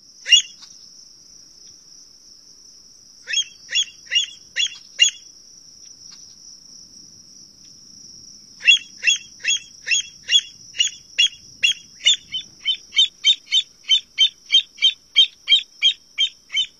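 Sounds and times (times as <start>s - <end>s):
American avocet sharp piping calls: 0.3s - 0.6s, 3.3s - 5.2s, 8.6s - 16.7s.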